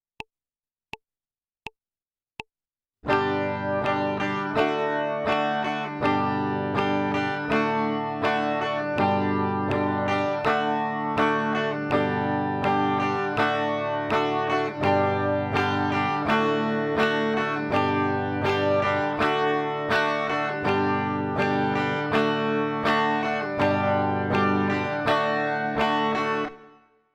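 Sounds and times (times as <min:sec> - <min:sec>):
guitar chord change G to D: 0:03.1 - 0:26.8.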